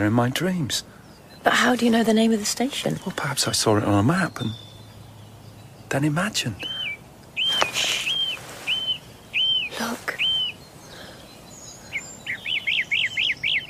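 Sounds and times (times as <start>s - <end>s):
speech: 0.0s - 4.7s, 5.9s - 6.8s
birds singing in whistled phrases with a rising trill: 0.0s - 13.6s
person whispering: 9.7s - 10.2s.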